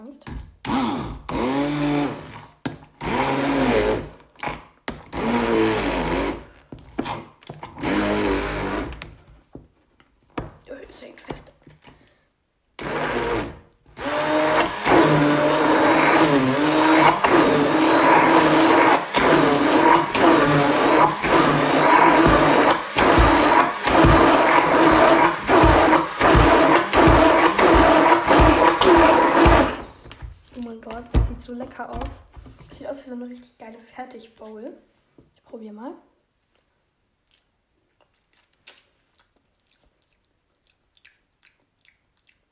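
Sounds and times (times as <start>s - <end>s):
speech: 0.1s - 0.5s
blender pureeing a brown banana: 0.6s - 4.2s, 5.1s - 6.6s, 7.7s - 9.1s, 12.8s - 30.2s.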